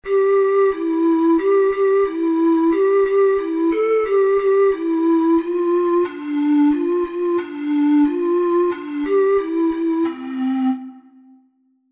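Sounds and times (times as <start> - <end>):
four-hole ocarina melody: 0.0 - 11.6.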